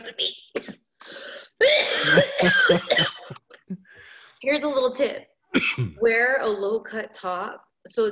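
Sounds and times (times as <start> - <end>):
person coughing after a big hit of smoke: 1.6 - 3.4, 5.6 - 6.0
speech: 2.1 - 3.1, 4.5 - 8.1.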